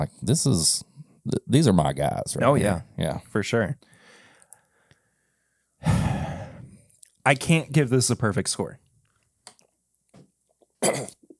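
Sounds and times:
speech: 0.0 - 3.9, 7.2 - 8.8
person coughing and sputtering after swallowing the wrong way: 10.8 - 11.3.

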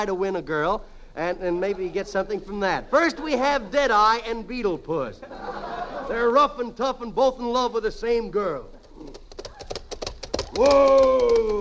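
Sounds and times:
speech: 0.0 - 9.2, 10.6 - 11.6
laughter: 5.2 - 6.6
horse's hooves clip-clopping at a trot: 8.8 - 11.6
person shouting at the horse: 10.5 - 11.6.

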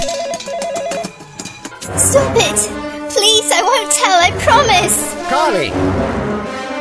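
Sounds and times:
telephone ringing with a warbling electronic tone: 0.0 - 1.3
speech: 1.9 - 2.9, 3.8 - 6.5.

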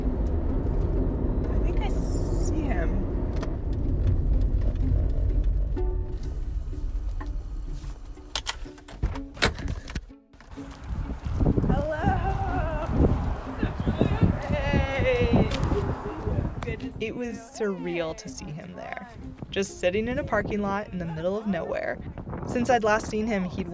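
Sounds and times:
car driving on roads around Mount Rainier: 0.0 - 8.8, 10.4 - 17.2
speech: 17.2 - 23.7.

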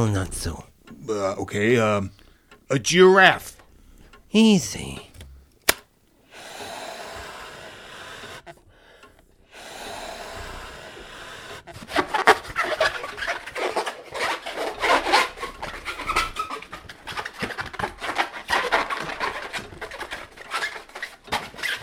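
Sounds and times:
speech: 0.0 - 3.6, 4.3 - 5.1
balloon squeaking while being twisted into a balloon animal: 12.0 - 21.8.

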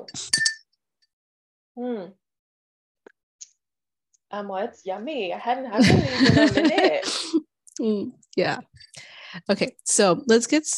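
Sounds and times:
speech: 0.0 - 0.4, 1.8 - 2.2, 4.3 - 10.7
glasses clinking in a toast: 0.0 - 0.7
laughter: 5.8 - 7.4.

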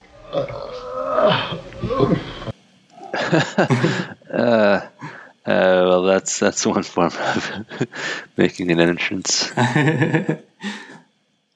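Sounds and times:
speech: 0.4 - 2.3, 3.3 - 4.9, 5.5 - 10.7
short voiced utterances: 2.9 - 5.8, 7.6 - 11.0
man belching: 3.0 - 6.0, 8.4 - 11.0
laughter: 3.0 - 11.0.

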